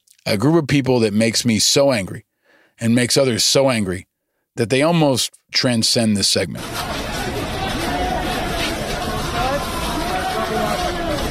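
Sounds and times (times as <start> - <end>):
speech: 0.2 - 7.0
crowd looting stores in New York City: 6.6 - 11.3
shuffling commotion of looting crowd: 6.6 - 11.3.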